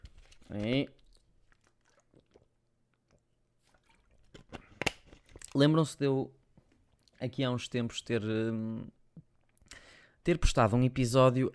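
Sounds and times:
speech: 0:00.5 - 0:01.0, 0:05.6 - 0:06.4, 0:07.2 - 0:09.0, 0:10.2 - 0:11.5
person drinking water: 0:01.0 - 0:05.5
gulping swallows: 0:01.5 - 0:02.7.

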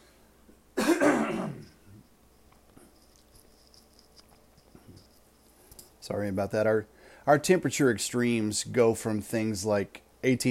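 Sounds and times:
raspy throat clearing: 0:00.8 - 0:01.8
speech: 0:06.1 - 0:10.4.

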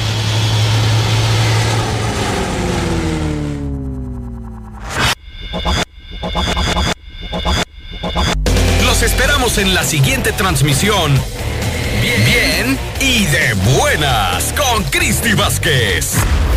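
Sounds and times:
airplane propeller engine drone preparing for takeoff, radio effect: 0:00.0 - 0:16.5
speech: 0:09.0 - 0:11.4, 0:12.0 - 0:16.5.

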